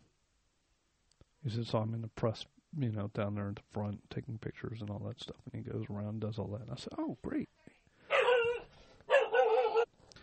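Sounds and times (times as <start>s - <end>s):
speech: 1.4s - 7.6s
dog barking: 8.1s - 9.9s.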